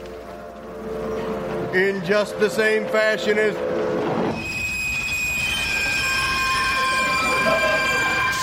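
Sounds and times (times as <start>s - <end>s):
low rumble of rail noise: 0.0s - 8.4s
speech: 1.7s - 3.7s
train wheels squealing pulling into station: 2.0s - 8.4s.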